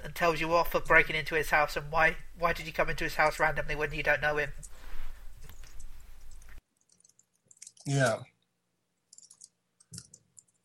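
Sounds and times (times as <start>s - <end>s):
speech: 0.2s - 4.7s, 7.9s - 8.3s
typing on a computer keyboard: 5.6s - 7.9s, 9.1s - 10.6s.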